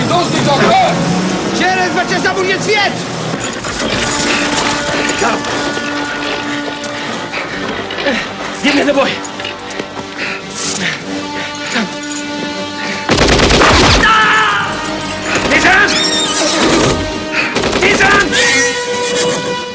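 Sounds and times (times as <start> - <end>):
horses neighing and whinnying during a violent fight: 0.1 - 12.6, 13.5 - 19.6
speech: 1.9 - 4.6, 5.1 - 5.8, 8.1 - 9.3, 10.8 - 11.2
sharp blasts: 13.1 - 14.4.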